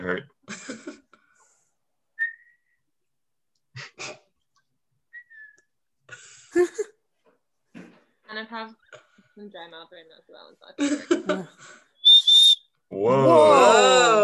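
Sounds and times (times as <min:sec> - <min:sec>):
speech: 0:00.0 - 0:00.6, 0:09.4 - 0:11.9, 0:13.0 - 0:14.2
person whistling in different ways: 0:02.2 - 0:02.8, 0:05.1 - 0:05.7, 0:12.0 - 0:12.7.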